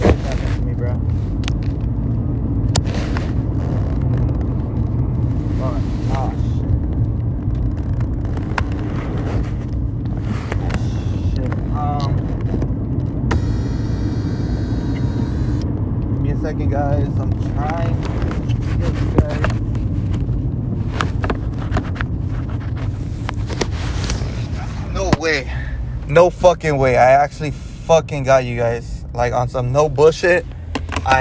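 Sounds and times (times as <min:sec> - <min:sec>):
road traffic rumble with engines droning: 0:00.0 - 0:31.2
speech: 0:26.4 - 0:31.2.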